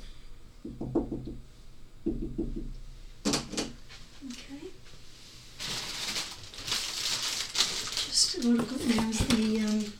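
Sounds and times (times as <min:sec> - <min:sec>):
quick sharp knocks on a door: 0:00.6 - 0:01.4, 0:02.0 - 0:03.8
rustling and crinkling of packing material: 0:05.6 - 0:09.9.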